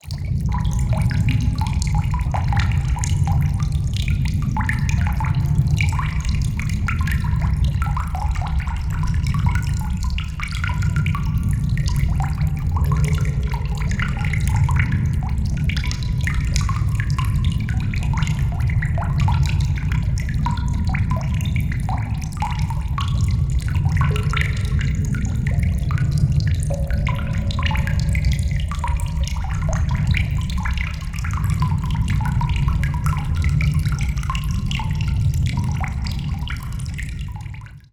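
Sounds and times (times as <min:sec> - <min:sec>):
water trickling in a cave: 0:00.0 - 0:37.9.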